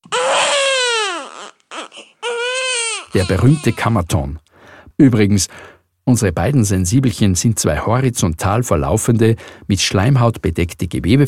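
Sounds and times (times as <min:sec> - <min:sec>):
newborn baby's first cry: 0:00.0 - 0:04.1
speech: 0:03.1 - 0:11.2.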